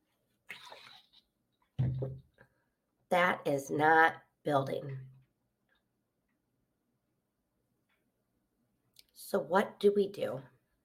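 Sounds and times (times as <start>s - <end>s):
person slurping a drink: 0.5s - 1.2s
speech: 2.0s - 2.3s, 3.1s - 5.1s, 9.3s - 10.5s.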